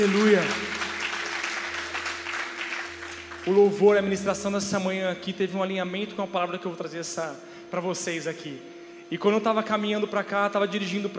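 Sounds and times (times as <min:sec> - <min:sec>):
speech: 0:00.0 - 0:00.8, 0:03.4 - 0:11.1
audience applauding: 0:00.0 - 0:04.0
faint low electrical hum: 0:00.0 - 0:11.1.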